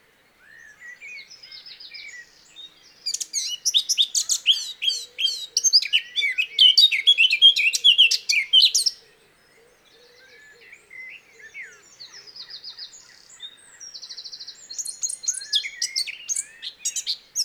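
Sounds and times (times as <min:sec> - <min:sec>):
Eurasian blackcap Sylvia atricapilla singing: 0:03.1 - 0:09.0, 0:14.2 - 0:17.4.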